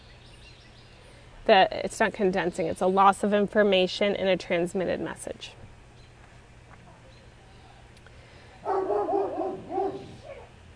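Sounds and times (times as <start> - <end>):
faint hum: 0.0 - 10.7
speech: 1.5 - 5.6
dogs barking and yelping: 8.6 - 10.6.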